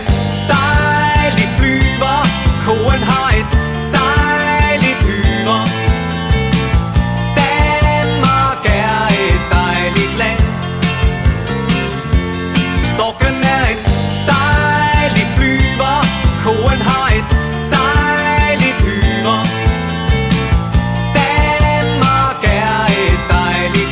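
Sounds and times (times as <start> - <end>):
Danish ringtone melody: 0.1 - 12.9, 13.9 - 23.8.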